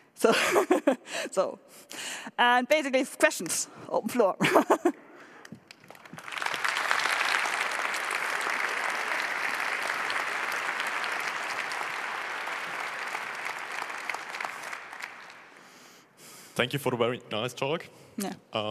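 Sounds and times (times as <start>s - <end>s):
speech: 0.2s - 5.0s, 16.6s - 18.6s
large audience applause: 5.6s - 15.9s.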